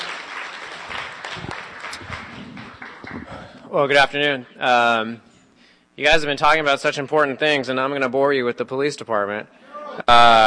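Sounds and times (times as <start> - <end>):
audience applause: 0.0 - 3.6
speech: 3.7 - 5.3, 6.0 - 10.4.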